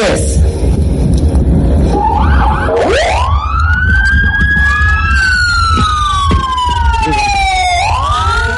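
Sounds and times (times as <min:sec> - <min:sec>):
engines and traffic rumble: 0:00.0 - 0:08.5
emergency vehicle sirens wailing at a holiday highway safety operation flag-off: 0:01.7 - 0:08.5.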